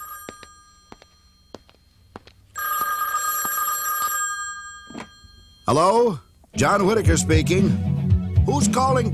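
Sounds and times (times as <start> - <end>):
old-style telephone bell ringing: 0.0 - 6.4
speech: 5.7 - 7.9, 8.5 - 9.1.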